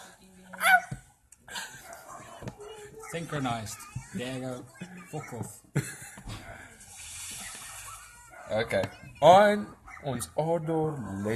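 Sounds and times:
dogs barking outside: 0.6s - 3.6s, 5.1s - 6.8s, 7.4s - 9.0s, 9.7s - 11.3s
speech: 3.1s - 6.0s, 8.5s - 11.3s.

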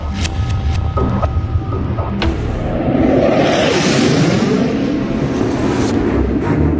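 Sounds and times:
aircraft during an air raid in Kharkiv Ukraine: 0.0s - 6.7s
airstrike bomb explosions in Kharkiv Ukraine: 2.0s - 6.0s.

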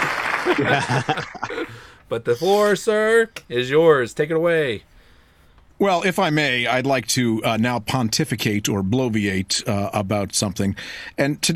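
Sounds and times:
dense noisy clapping: 0.0s - 1.2s
laughter: 0.0s - 1.8s
speech: 0.4s - 4.9s, 5.8s - 11.5s.

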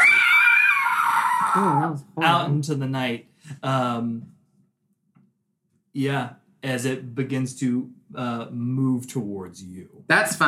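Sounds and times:
monster creature screaming: 0.0s - 2.0s
speech: 1.6s - 4.4s, 6.0s - 10.4s.

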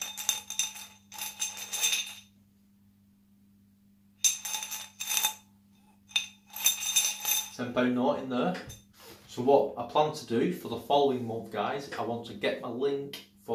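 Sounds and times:
coins rattling in a glass jar: 0.0s - 2.3s, 4.2s - 5.4s, 6.1s - 7.6s
speech: 7.6s - 13.5s.

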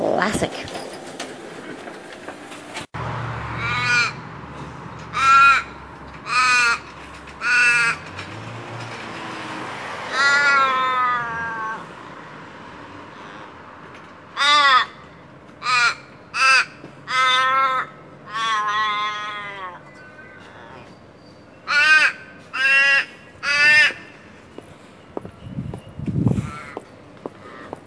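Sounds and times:
speech: 0.2s - 0.8s
city crow cawing: 3.6s - 4.2s, 5.1s - 8.1s, 10.1s - 11.9s, 14.3s - 19.8s, 21.6s - 24.2s, 26.4s - 26.8s.

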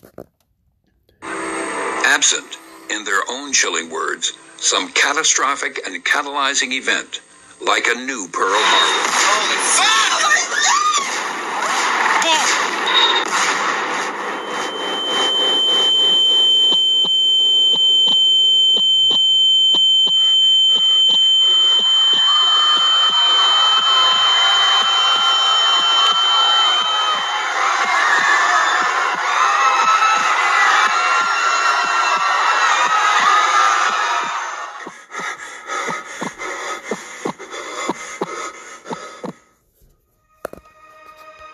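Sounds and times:
speech: 2.2s - 10.8s
steady high alarm-like tone: 8.4s - 10.4s, 12.8s - 39.2s
agitated crowd shouting and crying out: 8.4s - 14.7s, 22.1s - 36.5s.

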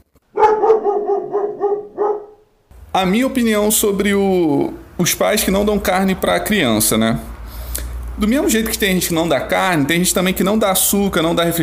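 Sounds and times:
dog barking in slightly whiny yaps: 0.3s - 2.4s
speech: 3.0s - 7.3s, 8.2s - 11.6s.

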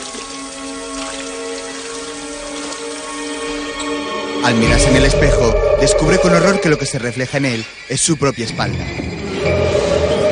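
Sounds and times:
person washing face at a bathroom sink: 0.0s - 3.7s
water running from a bathroom sink tap: 0.0s - 3.8s
speech: 4.4s - 9.6s.

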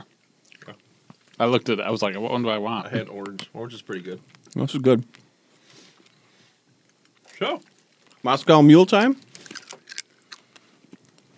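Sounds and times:
hard candy crunched between teeth: 0.0s - 1.6s, 4.2s - 11.3s
speech: 1.4s - 5.2s, 8.2s - 9.3s.

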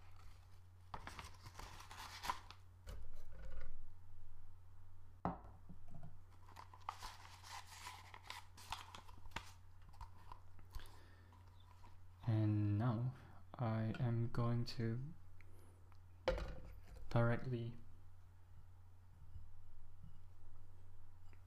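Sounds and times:
paper coffee filter crinkling and rustling as it is creased and folded: 0.0s - 2.6s, 6.3s - 12.0s
low steady hum: 0.0s - 21.4s
speech: 13.6s - 15.2s, 17.2s - 17.8s.

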